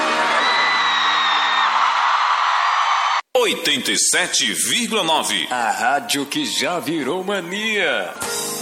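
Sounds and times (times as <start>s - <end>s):
crowd yelling and whooping: 0.0s - 3.2s
speech: 3.5s - 8.4s.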